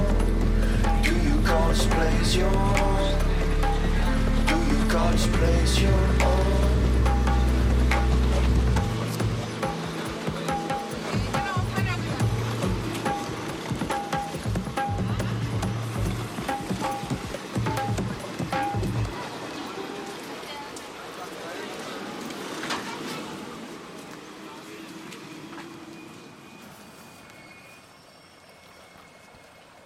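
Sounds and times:
music with deep bass line and bright sustained tones: 0.0s - 19.1s
rushing water: 0.0s - 29.8s
speech: 5.4s - 6.7s.

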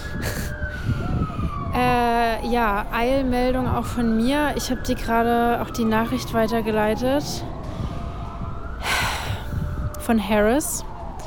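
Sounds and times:
emergency siren wailing on a San Francisco street: 0.0s - 11.2s
low rumble of street traffic: 0.0s - 11.2s
speech: 1.8s - 7.5s, 10.1s - 10.9s.

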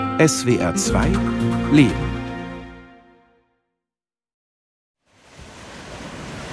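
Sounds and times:
speech: 0.2s - 2.1s
tonal sound: 0.5s - 3.0s.

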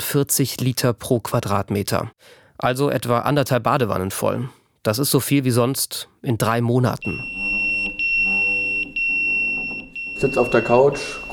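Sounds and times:
speech: 0.1s - 7.5s, 10.2s - 11.3s
volunteer firefighter pager alert tone in Hagen Germany: 7.0s - 11.3s.

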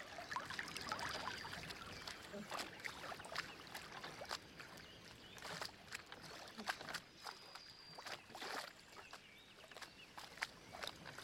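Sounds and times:
small waves lapping on a lake: 0.0s - 11.2s.

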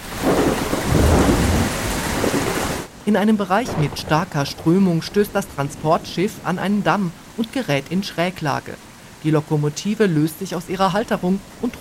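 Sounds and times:
heavy rain over a freight sailing ship on the Rhine: 0.0s - 11.7s
deep rolling thunder over a freight sailing ship on the Rhine: 0.1s - 2.9s, 3.6s - 6.4s
speech: 3.1s - 11.7s.

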